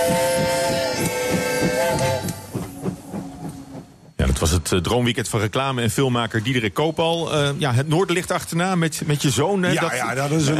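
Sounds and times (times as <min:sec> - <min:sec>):
Trans-Siberian train departing Moscow station rolling along rails: 0:00.0 - 0:04.6
speech: 0:04.4 - 0:10.5.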